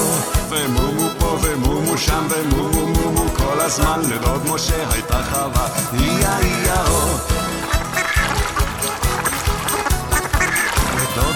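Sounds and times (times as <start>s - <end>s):
farm-themed children's song: 0.0s - 7.9s, 10.5s - 11.3s
speech: 0.5s - 0.8s, 2.0s - 7.4s
duck quacking in a farm-themed children's song: 7.1s - 11.3s.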